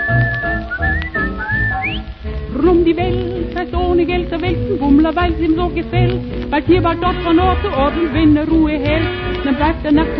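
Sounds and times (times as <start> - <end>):
people whistling a melody along to a song: 0.0 - 2.1
speech: 2.7 - 10.1.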